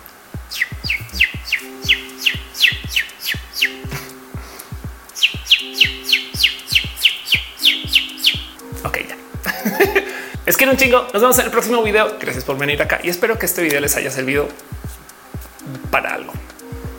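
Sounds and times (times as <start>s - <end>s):
bird chirping imitated with the tongue: 0.5s - 4.2s, 5.2s - 8.6s
laughter: 9.4s - 10.2s
speech: 10.5s - 14.8s.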